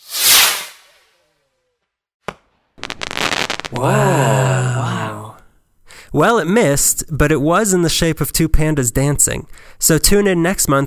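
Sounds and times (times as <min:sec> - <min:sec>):
firecracker fuse hissing whoosh: 0:00.0 - 0:01.0
firecracker exploding with crack and crackling pops: 0:02.3 - 0:04.0
speech: 0:03.7 - 0:04.5, 0:06.1 - 0:10.8.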